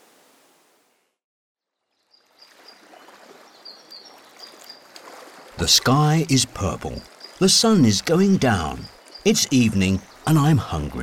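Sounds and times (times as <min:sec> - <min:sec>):
flowing river water: 0:02.0 - 0:11.0
speech: 0:05.6 - 0:11.0.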